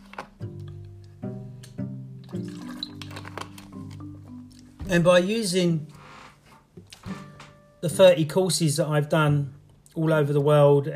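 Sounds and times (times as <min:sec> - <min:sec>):
water pouring into a glass: 0:02.2 - 0:03.3
speech: 0:04.9 - 0:06.0, 0:07.8 - 0:10.9.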